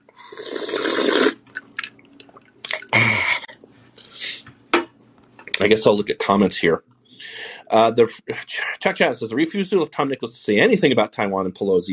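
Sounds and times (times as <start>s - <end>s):
person slurping a vodka tonic: 0.3s - 1.4s
swallowing: 2.2s - 3.6s
speech: 5.6s - 6.9s, 7.7s - 11.9s.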